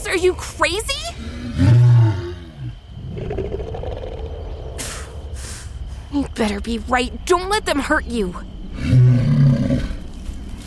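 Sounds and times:
speech: 0.1s - 1.8s, 6.4s - 9.1s
lion growling: 1.3s - 4.8s, 8.7s - 10.1s
lion roaring: 1.4s - 4.5s, 8.8s - 10.0s.

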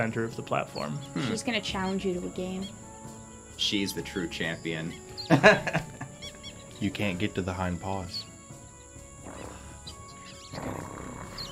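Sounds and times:
speech: 0.0s - 2.8s, 3.6s - 6.0s, 6.8s - 8.2s
laughter: 5.3s - 6.2s
lioness roaring in the trees: 10.5s - 11.5s.

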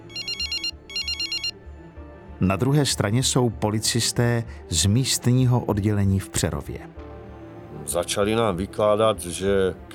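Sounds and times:
telephone ringing with electronic trills: 0.0s - 1.5s
speech: 2.4s - 7.1s, 7.9s - 9.9s.

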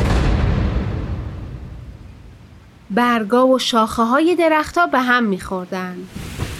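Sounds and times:
loud deep thunder crash in a storm: 0.0s - 2.5s, 6.1s - 6.5s
speech: 2.9s - 6.2s.

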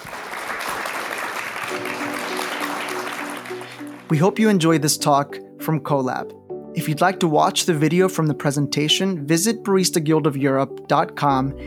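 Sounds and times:
audience applause after a coffee presentation: 0.0s - 4.2s
speech: 4.1s - 11.6s.

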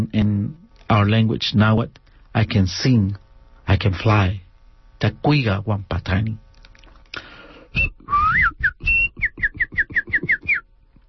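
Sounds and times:
speech: 0.0s - 4.4s, 5.0s - 6.4s
person whistling imitating bird songs while walking: 7.8s - 10.7s.

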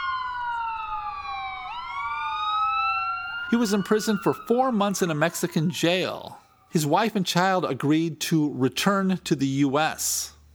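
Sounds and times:
police car siren wailing: 0.0s - 7.2s
speech: 3.5s - 10.4s.

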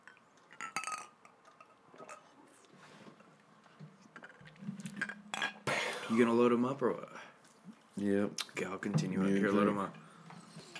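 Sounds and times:
glasses clinking together in a toast: 0.5s - 2.2s, 5.0s - 5.6s
speech: 6.1s - 7.2s, 8.0s - 10.0s.

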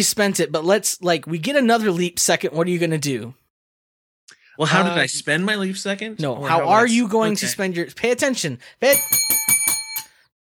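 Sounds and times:
speech: 0.0s - 3.4s, 4.6s - 9.4s
bicycle bell ringing: 8.9s - 10.3s.

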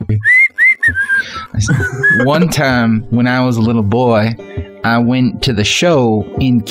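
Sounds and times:
speech: 0.1s - 0.3s, 1.5s - 6.6s
person whistling a tune: 0.2s - 2.3s
laughter: 1.1s - 2.8s.

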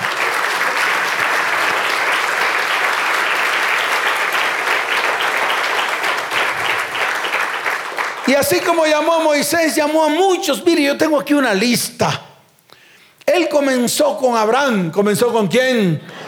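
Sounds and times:
large gathering applauding: 0.0s - 9.3s
speech: 8.3s - 12.3s, 13.5s - 16.1s.

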